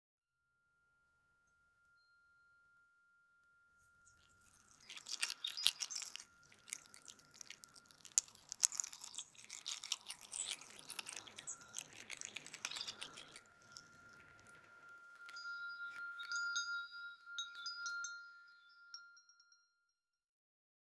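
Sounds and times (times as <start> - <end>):
birdsong: 4.5 - 16.8
uplifting chime: 13.0 - 19.5.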